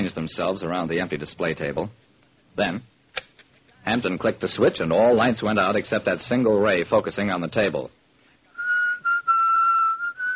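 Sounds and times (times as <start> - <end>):
speech: 0.0 - 2.0, 2.6 - 2.9, 3.8 - 8.0
deaf man whistling: 8.5 - 10.3.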